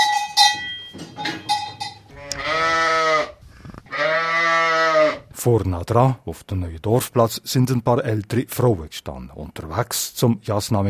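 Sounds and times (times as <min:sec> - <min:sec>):
clanking cowbell tones: 0:00.0 - 0:02.7
restless sheep bleating in an old stable in Baltschieder: 0:02.1 - 0:05.3
speech: 0:05.4 - 0:10.8.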